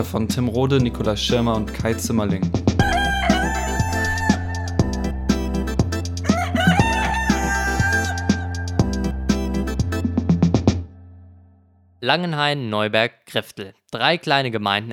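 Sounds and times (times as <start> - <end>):
speech: 0.0 - 3.0, 12.0 - 14.9
rhythmic musical backing with pulsing bass and sharp percussive hits: 0.8 - 10.8
rooster crowing: 2.8 - 5.2, 6.2 - 8.7.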